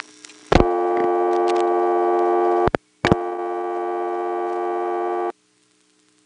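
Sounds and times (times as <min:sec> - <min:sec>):
telephone line ringing with long buzzing tones: 0:00.6 - 0:05.3.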